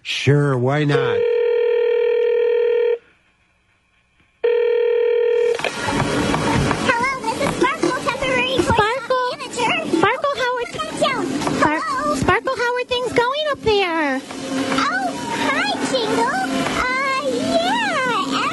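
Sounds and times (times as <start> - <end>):
speech: 0.2 - 1.3
long steady electronic telephone ring tones: 0.9 - 3.0, 4.4 - 5.6
busy, lively voices: 5.6 - 18.5.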